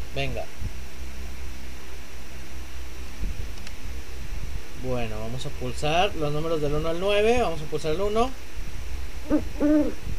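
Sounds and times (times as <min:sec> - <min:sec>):
low rumble: 0:00.0 - 0:10.1
speech: 0:00.2 - 0:00.7, 0:04.8 - 0:08.5, 0:09.3 - 0:10.1
owl hooting: 0:09.2 - 0:10.0.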